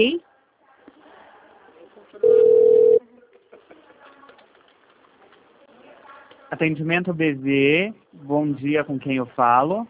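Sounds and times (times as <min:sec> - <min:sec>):
speech: 0:00.0 - 0:00.3, 0:06.5 - 0:09.8
faint voices murmuring: 0:00.2 - 0:06.9
telephone ringing tone while a call is transferred on a customer service line: 0:02.2 - 0:03.0.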